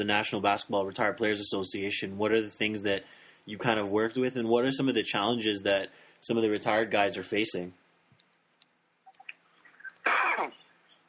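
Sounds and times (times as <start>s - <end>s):
speech: 0.0s - 7.8s
breathing: 3.0s - 3.5s, 5.9s - 6.2s
small clicks: 8.1s - 10.1s
person sneezing: 10.0s - 10.6s.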